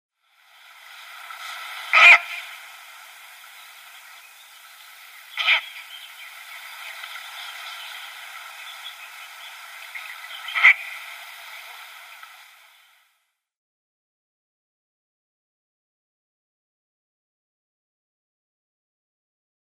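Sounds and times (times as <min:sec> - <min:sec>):
Ural owl calling: 0:01.7 - 0:13.0.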